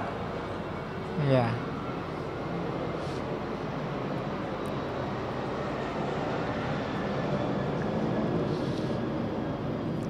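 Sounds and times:
airplane passing overhead: 0.0s - 10.0s
speech: 1.3s - 1.6s.

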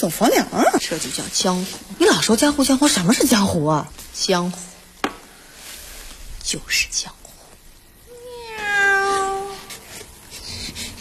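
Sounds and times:
speech: 0.0s - 4.7s, 6.5s - 7.2s
cat meowing: 8.1s - 9.7s.

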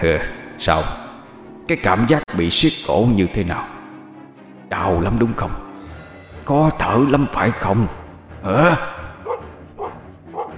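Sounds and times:
speech: 0.0s - 1.0s, 1.7s - 3.7s, 4.7s - 5.6s, 6.4s - 9.0s
dog barking at night: 9.2s - 10.5s.

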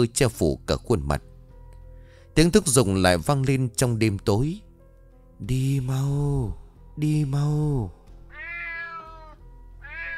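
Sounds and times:
speech: 0.0s - 1.3s, 2.4s - 4.6s, 5.4s - 8.0s
cat meowing in the night: 8.3s - 10.1s.

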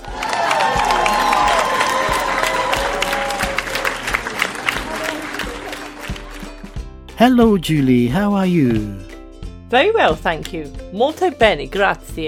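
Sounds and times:
studio crowd applauding on an Italian radio show: 0.0s - 6.8s
speech: 7.2s - 9.1s, 9.7s - 12.2s.

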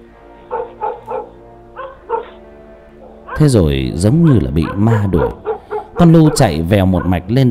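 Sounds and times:
dog barking frantically at a dark bend by a lake: 0.4s - 2.4s, 3.0s - 7.3s
speech: 3.4s - 7.4s.

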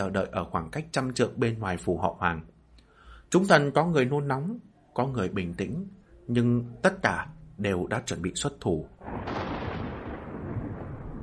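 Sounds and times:
speech: 0.0s - 2.5s, 3.3s - 9.5s
thunder from a lightning strike rolling as a low rumble: 9.0s - 11.2s.

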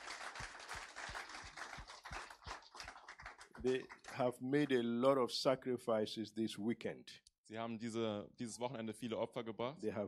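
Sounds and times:
audience rhythmic clapping at a church worship service: 0.0s - 4.8s
speech: 3.6s - 10.0s.

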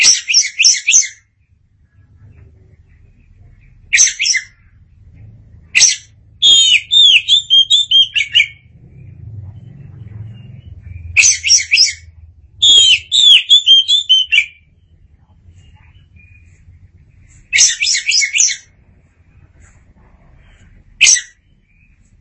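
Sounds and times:
oriental magpie-robin singing: 0.0s - 1.5s, 2.2s - 4.9s, 5.6s - 18.8s, 20.4s - 22.1s
soft low rumble: 1.4s - 3.9s, 4.5s - 6.4s, 8.5s - 11.2s, 14.6s - 17.6s, 18.6s - 22.1s.

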